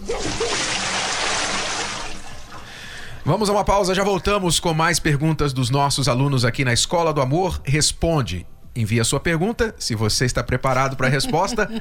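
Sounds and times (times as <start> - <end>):
bucket of cold water dumping out and splashing: 0.0 - 2.8
speech: 3.2 - 11.7.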